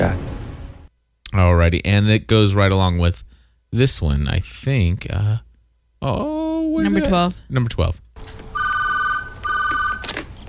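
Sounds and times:
speech: 0.0s - 0.2s, 1.3s - 8.4s
faint low hum: 0.0s - 10.4s
telephone ringing with shrill warbling tone: 8.5s - 10.2s.

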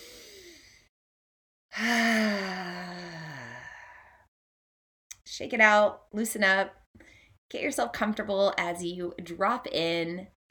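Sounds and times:
soft inhale during a guided breathing exercise: 0.0s - 0.9s
speech: 5.4s - 10.4s.

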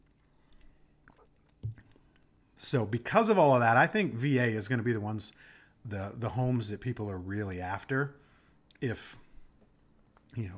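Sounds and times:
soft wet mouth sounds: 0.0s - 2.3s
sipping a drink: 0.1s - 2.3s
gulp-like thump: 1.0s - 2.2s
speech: 2.6s - 8.2s, 8.8s - 9.2s, 10.3s - 10.5s.

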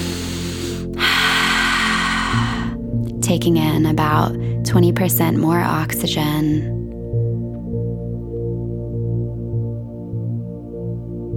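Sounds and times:
deep breath in during a guided breathing meditation: 0.0s - 2.9s
soft sustained musical drone: 0.0s - 11.3s
speech: 3.3s - 6.8s.

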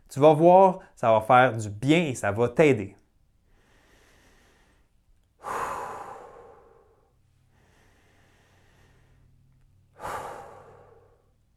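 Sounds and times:
speech: 0.1s - 3.0s
quiet steady inhale: 3.4s - 11.5s
loud drawn-out sighing exhales of relaxed deep breathing: 5.4s - 11.4s.

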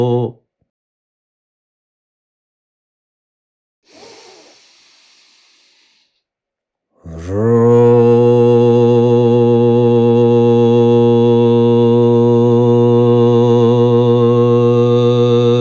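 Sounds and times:
deep voice chanting a long syllable ro: 0.0s - 0.4s, 7.0s - 15.5s
soft breath in: 3.9s - 6.2s.

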